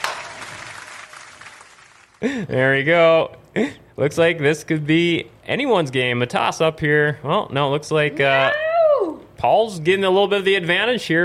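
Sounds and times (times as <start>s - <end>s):
crowd applause: 0.0s - 2.3s
speech: 2.2s - 8.6s, 9.4s - 11.2s.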